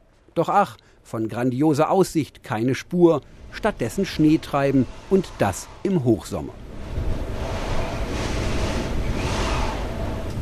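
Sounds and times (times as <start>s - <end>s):
speech: 0.4s - 7.1s
wind blowing on a snowy mountain summit: 3.0s - 10.3s.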